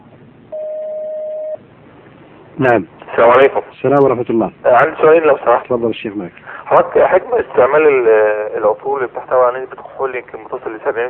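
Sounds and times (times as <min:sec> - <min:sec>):
faint hiss: 0:00.0 - 0:11.0
telephone line tone as an incoming caller is connected: 0:00.5 - 0:01.6
speech: 0:02.6 - 0:11.0.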